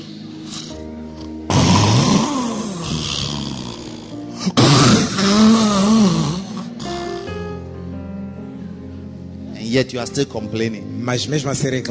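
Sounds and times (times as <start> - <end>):
voice imitating snoring: 1.5 - 7.3
speech: 4.4 - 4.9, 9.8 - 11.9.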